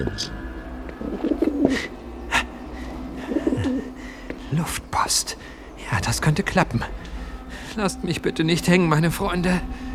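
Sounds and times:
speech: 0.0 - 0.4, 4.5 - 7.1, 7.7 - 9.8
caged pigeon cooing: 0.0 - 7.8
laughter: 1.1 - 5.1.

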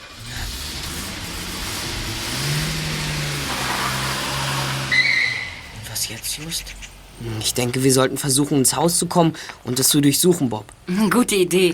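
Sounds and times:
car engine revving and accelerating as the car pulls away: 0.0 - 9.1
brief higher squeal: 4.9 - 5.6
speech: 6.1 - 11.7.

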